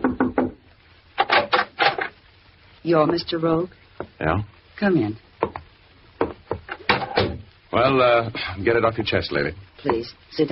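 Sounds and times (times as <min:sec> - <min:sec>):
knuckles knocking on a wooden cabin door: 0:00.0 - 0:00.6, 0:05.4 - 0:07.4
speech: 0:02.8 - 0:05.2, 0:07.7 - 0:10.5.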